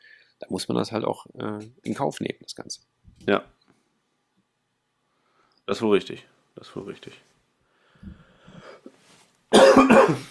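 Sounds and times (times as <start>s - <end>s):
speech: 0.4s - 3.6s, 5.7s - 7.3s, 9.5s - 10.2s
person coughing: 9.5s - 10.2s.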